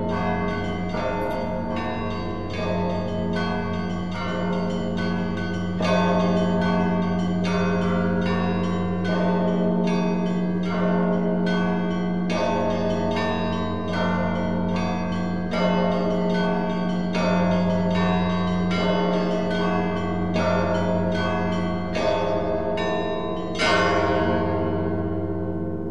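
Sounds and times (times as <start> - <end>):
monastery tower bells pealing: 0.0 - 25.8.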